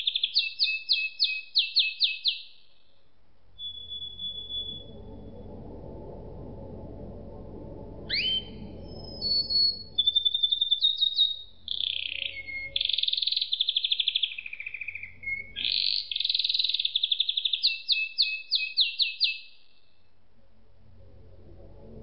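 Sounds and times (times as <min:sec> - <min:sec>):
canary song with sweeping notes, buzzy rolls and rattling trills: 0:00.0 - 0:02.6, 0:03.6 - 0:05.3, 0:08.1 - 0:19.5
low background noise: 0:00.0 - 0:22.0.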